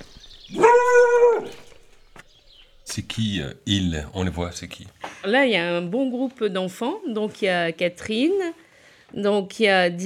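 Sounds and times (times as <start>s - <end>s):
dog giving a drawn-out tonal bark: 0.5s - 1.7s
speech: 3.0s - 10.0s.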